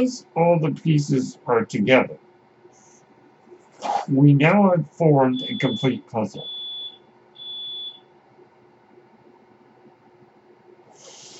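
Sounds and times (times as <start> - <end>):
speech: 0.0 - 2.2, 4.0 - 6.5
quiet room hum: 0.0 - 11.3
smoke alarm low-battery chirp: 5.3 - 8.1.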